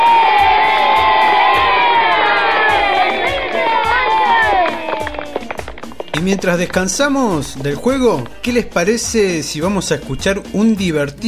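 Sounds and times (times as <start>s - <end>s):
children clapping: 0.0s - 8.9s
crowd of children cheering and shouting during a kindergarten game: 0.0s - 9.0s
speech: 6.3s - 11.2s.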